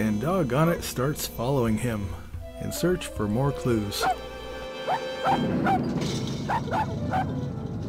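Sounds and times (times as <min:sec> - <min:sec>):
speech: 0:00.0 - 0:04.3, 0:04.9 - 0:07.6
dog barking sharp and yappy: 0:04.9 - 0:05.9, 0:06.5 - 0:07.3.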